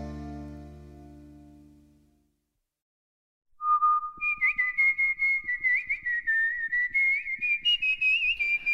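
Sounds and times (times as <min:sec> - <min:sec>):
person whistling a wandering tune: 0:03.6 - 0:08.7.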